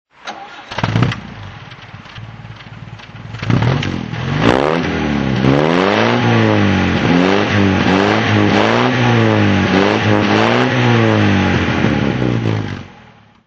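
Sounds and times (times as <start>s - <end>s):
Austin Healey 100 4 BN2 engine on throttle: 0.4s - 13.4s.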